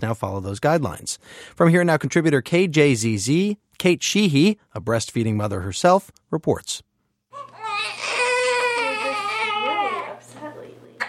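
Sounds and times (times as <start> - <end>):
speech: 0.0 - 6.9
newborn baby boy crying after tongue tie surgery: 7.3 - 10.2.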